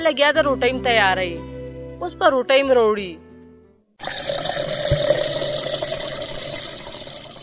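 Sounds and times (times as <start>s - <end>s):
speech: 0.0s - 3.2s
water being poured for someone to drink: 4.0s - 7.4s.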